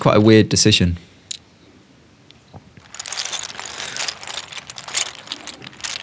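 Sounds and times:
speech: 0.0 - 1.1
close-miked ASMR clicking: 2.8 - 6.0.

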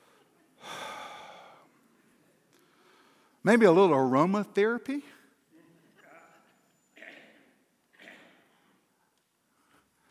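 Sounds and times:
long deep breath: 0.0 - 1.8, 2.6 - 3.4
speech: 3.4 - 5.2.

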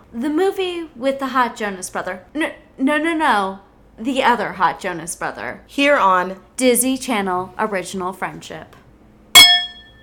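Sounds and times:
speech: 0.1 - 8.8
drinking glasses tapping together: 9.4 - 10.0.

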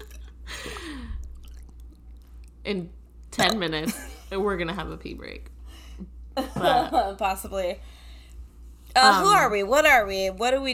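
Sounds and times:
person gulping water from a mason jar: 0.0 - 2.6
low hum: 0.0 - 10.7
speech: 2.6 - 8.0, 9.0 - 10.7.

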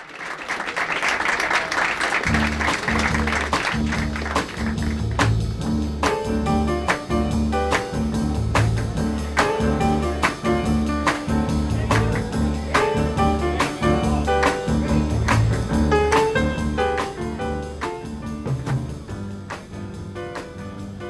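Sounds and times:
crowd noise and applause: 0.0 - 5.4, 15.3 - 21.0
crisp drums: 2.2 - 21.0
live jazz piano trio playing an upbeat instrumental cover of a pop song: 2.3 - 21.0
walking bass: 2.3 - 21.0.

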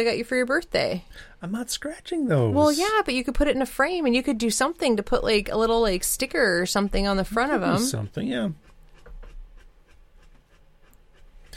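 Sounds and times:
speech: 0.0 - 8.6
dog panting excitedly over a bone: 7.8 - 11.5.

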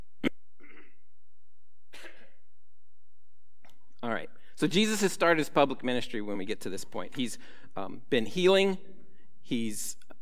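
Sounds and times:
person coughing sharply: 0.2 - 1.1
speech: 4.2 - 10.0
faint trailing breath: 7.4 - 7.8.

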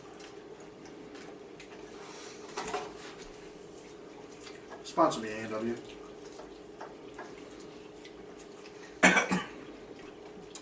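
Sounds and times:
speech: 5.0 - 6.0
person coughing after inhaling food seasoning: 9.0 - 9.6.

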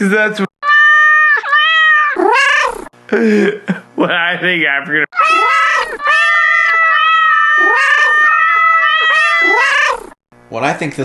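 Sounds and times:
speech: 0.0 - 0.5, 3.1 - 6.3, 10.5 - 11.0
cat meowing loudly and insistently: 0.6 - 2.9, 5.2 - 10.2.

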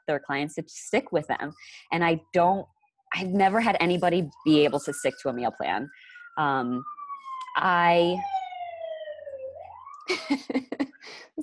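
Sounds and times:
speech: 0.1 - 7.0, 7.6 - 8.4, 10.1 - 11.2
emergency vehicle siren wailing as it passes: 3.6 - 11.0.

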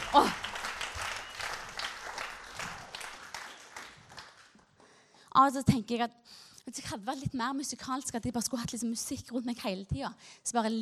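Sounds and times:
audience applause at a church service: 0.0 - 4.6
speech: 0.1 - 0.4, 5.4 - 10.7.

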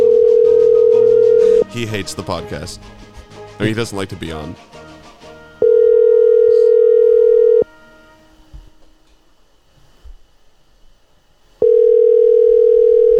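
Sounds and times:
outgoing phone call ringback tone: 0.0 - 1.7, 5.6 - 7.7, 11.6 - 13.1
speech: 1.8 - 3.0, 3.6 - 4.8.

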